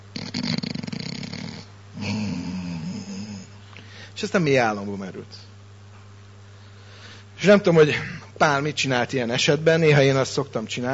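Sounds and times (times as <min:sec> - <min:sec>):
person imitating snoring: 0:00.1 - 0:03.6
speech: 0:04.2 - 0:05.5, 0:07.4 - 0:10.9.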